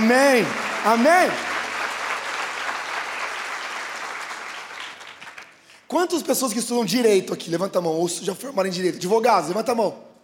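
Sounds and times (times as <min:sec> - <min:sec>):
large crowd applauding loudly: 0:00.0 - 0:05.7
speech: 0:00.1 - 0:01.5, 0:05.9 - 0:10.1.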